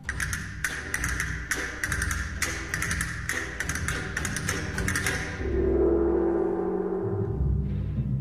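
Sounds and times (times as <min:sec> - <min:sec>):
castanet clicks: 0:00.0 - 0:05.4
soft orchestral accompaniment: 0:00.0 - 0:08.2.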